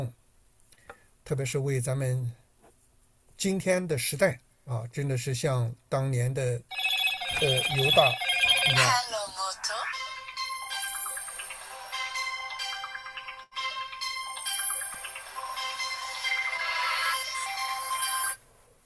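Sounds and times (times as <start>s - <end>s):
speech: 1.3s - 2.4s, 3.4s - 9.0s
mobile phone ringtone with bright chiming melody: 6.7s - 18.4s.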